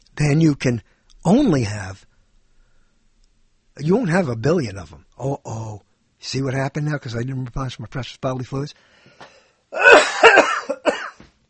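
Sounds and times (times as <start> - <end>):
speech: 0.2 - 2.1, 3.8 - 10.0
harsh coughing fit: 9.8 - 11.3.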